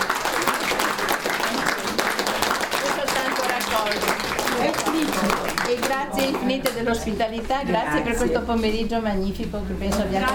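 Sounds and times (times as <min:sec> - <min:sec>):
audience applause at an afternoon gathering: 0:00.0 - 0:06.6
speech: 0:05.0 - 0:10.3.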